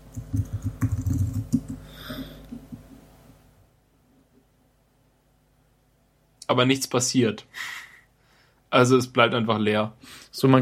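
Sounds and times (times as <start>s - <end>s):
computer keyboard keys clattering as a message is typed: 0.1s - 1.8s
speech: 6.5s - 7.8s, 8.7s - 10.6s.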